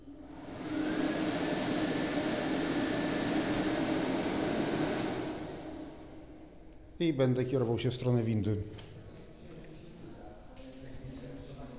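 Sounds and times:
electric dryer in a bathroom blowing air: 0.2s - 6.7s
speech: 7.0s - 8.9s.

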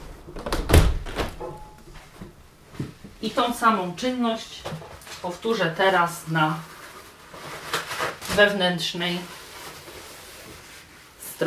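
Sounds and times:
window being closed with soft thuds and knocks: 0.4s - 1.4s
speech: 3.2s - 6.7s, 8.4s - 9.4s.

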